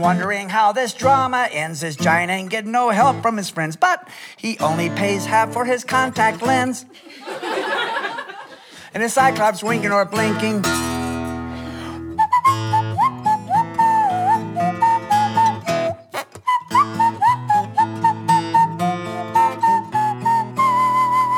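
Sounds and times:
speech: 0.0s - 7.5s, 8.9s - 10.9s
laughter: 6.8s - 8.8s
person whistling a lively wavering melody: 11.0s - 21.3s.

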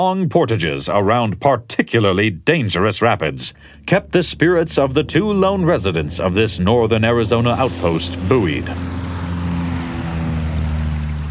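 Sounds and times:
speech: 0.0s - 9.0s
passenger airplane propeller engine flying overhead over a river: 4.3s - 11.2s.

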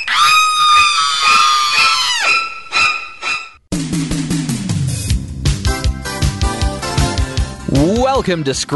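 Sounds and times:
person screaming in terror in the shower: 0.0s - 2.6s
upbeat music: 3.8s - 8.7s
speech: 8.2s - 8.7s.

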